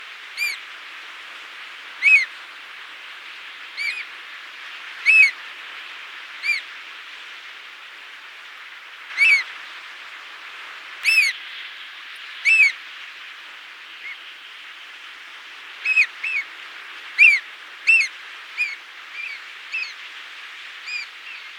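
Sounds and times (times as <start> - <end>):
sooty oystercatcher calling: 2.0 - 2.3, 3.8 - 4.0, 5.1 - 5.3, 6.4 - 6.6, 11.0 - 11.3, 12.5 - 12.7, 15.9 - 16.4, 17.2 - 20.0, 20.9 - 21.4.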